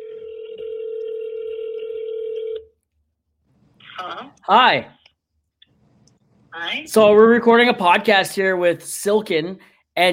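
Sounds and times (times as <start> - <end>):
telephone on speakerphone giving steady mid-pitched tone: 0.0 - 2.7
speech: 4.0 - 5.0, 6.7 - 10.1.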